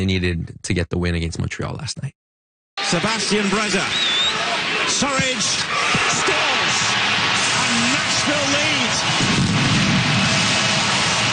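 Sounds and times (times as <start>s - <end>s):
speech: 0.0s - 2.2s, 2.9s - 4.2s, 4.9s - 6.8s, 7.8s - 9.7s
fireworks bursting at a football stadium in Nashville after a goal: 4.0s - 11.3s.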